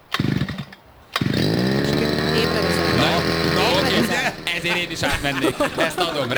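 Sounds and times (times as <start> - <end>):
petrol brush cutter two-stroke engine pull-started and idling: 0.0 - 6.3
laughter: 1.7 - 6.3
speech: 4.6 - 6.3.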